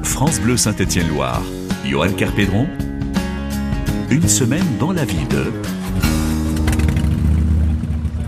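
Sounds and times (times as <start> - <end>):
speech: 0.2 - 2.9, 4.1 - 6.2
motorcycle engine revving: 5.6 - 8.2.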